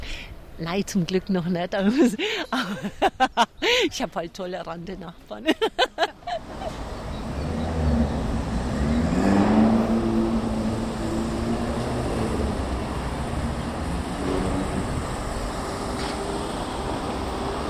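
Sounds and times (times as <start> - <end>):
continuous low road noise: 0.0 - 17.6
speech: 0.6 - 6.8
laughter: 1.9 - 3.9, 5.4 - 6.8
cars rumbling past on a street: 5.4 - 17.6.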